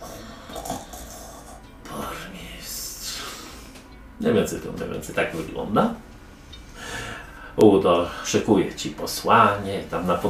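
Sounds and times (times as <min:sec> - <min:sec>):
man snoring in his sleep: 0:00.0 - 0:01.7
steady hiss of noise: 0:00.0 - 0:10.2
speech: 0:04.2 - 0:06.0, 0:07.6 - 0:10.2.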